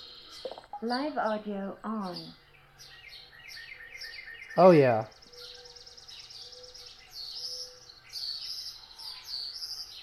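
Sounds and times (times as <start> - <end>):
songbirds chirping and trilling in a dawn chorus: 0.0 - 10.0
speech: 0.4 - 2.4, 4.6 - 5.2.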